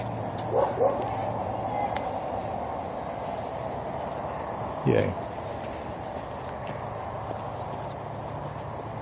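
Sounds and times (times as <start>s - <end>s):
steady low hum of outdoor noise: 0.0s - 9.0s
dog barking behind a fence: 0.5s - 1.1s
speech: 4.8s - 5.3s.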